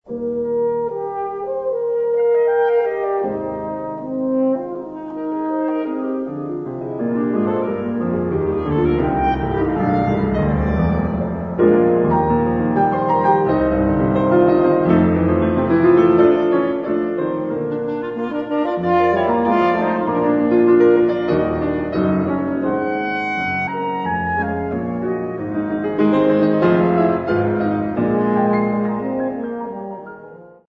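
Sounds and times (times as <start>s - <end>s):
piano in a trio: 0.0s - 30.7s
horn in a trio: 0.1s - 30.6s
clarinet in a trio: 0.1s - 30.7s.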